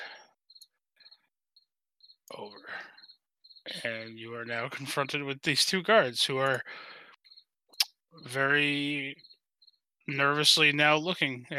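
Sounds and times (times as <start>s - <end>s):
cricket chirping: 0.0s - 4.7s, 6.7s - 9.9s
speech: 2.3s - 7.0s, 8.1s - 9.3s, 10.1s - 11.5s.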